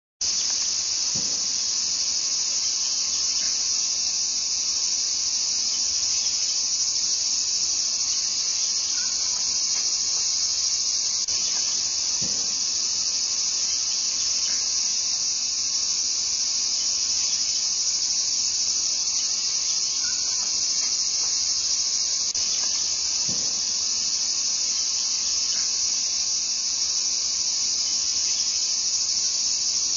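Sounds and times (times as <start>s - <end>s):
aburazemi cicada singing: 0.2s - 29.9s.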